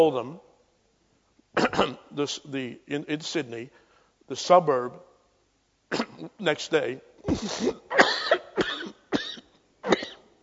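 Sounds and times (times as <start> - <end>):
speech: 0.0 - 0.5, 1.6 - 5.1, 5.9 - 8.4
person with asthma coughing: 1.6 - 2.0, 5.9 - 6.4, 7.2 - 10.3.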